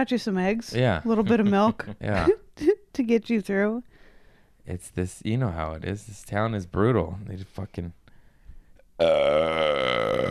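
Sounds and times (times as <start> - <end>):
speech: 0.0 - 3.9, 4.6 - 8.0, 9.0 - 10.2
loud deep burp: 9.0 - 10.2.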